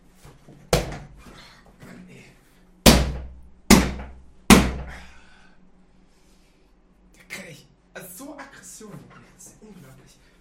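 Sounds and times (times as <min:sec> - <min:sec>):
chair being struck by hand: 0:00.7 - 0:01.1, 0:02.8 - 0:05.0.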